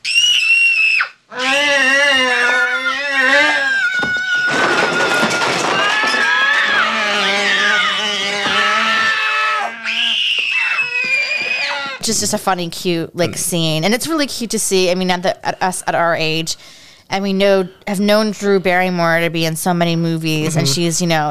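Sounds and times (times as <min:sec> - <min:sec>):
shrill screaming voice: 0:00.0 - 0:12.0
speech: 0:12.1 - 0:21.2.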